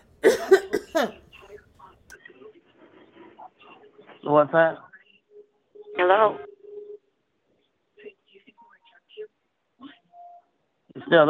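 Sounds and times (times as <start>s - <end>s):
person coughing harshly: 0.2s - 1.2s
speech: 4.3s - 4.9s, 6.0s - 6.5s, 11.1s - 11.2s.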